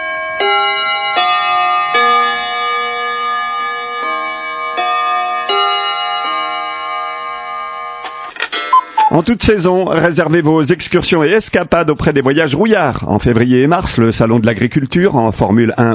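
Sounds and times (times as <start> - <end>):
radio station hourly clock chime with bell-like tones: 0.0 - 9.2
speech: 9.2 - 15.9.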